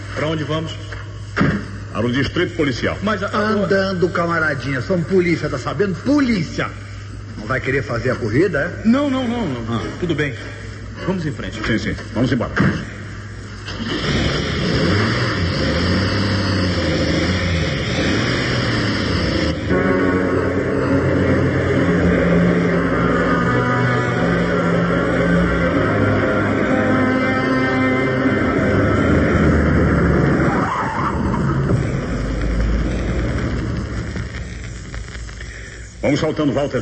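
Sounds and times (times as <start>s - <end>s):
speech: 0.2s - 6.8s, 7.4s - 12.9s, 13.8s - 15.0s, 36.1s - 36.8s
car engine droning and whining as it accelerates: 13.1s - 36.0s
road rumble: 13.6s - 36.1s.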